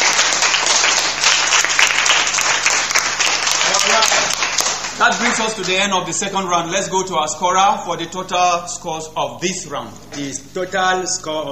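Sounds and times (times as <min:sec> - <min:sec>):
audience applause at a school quiz competition: 0:00.0 - 0:05.8
speech: 0:05.0 - 0:11.5.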